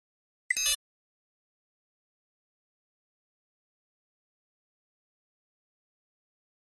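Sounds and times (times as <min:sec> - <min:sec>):
electronic double beep: 0:00.5 - 0:00.8.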